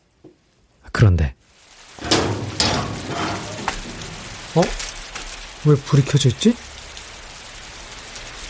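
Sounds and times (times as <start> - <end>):
speech: 1.0 - 1.4, 4.6 - 4.9, 5.6 - 6.7
key unlocking a house's iron front gate: 2.0 - 4.8
scraping rumbling background: 2.0 - 5.2.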